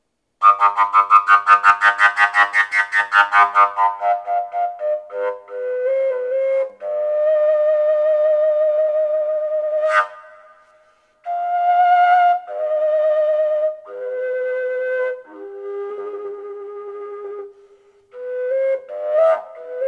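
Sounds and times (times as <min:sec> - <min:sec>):
fujara playing Slovak folk music: 0:00.4 - 0:19.8.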